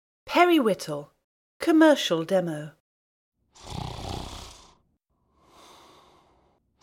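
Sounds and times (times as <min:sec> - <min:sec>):
speech: 0:00.4 - 0:02.8
man snoring in a small moist faux-wood paneled basement in Roanoke Virginia: 0:03.5 - 0:06.8.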